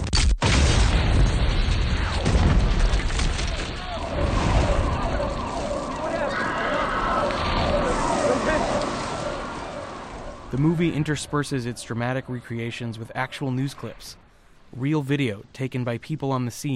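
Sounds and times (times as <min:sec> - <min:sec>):
bomb blast in a film: 0:00.0 - 0:12.3
speech: 0:10.6 - 0:16.7.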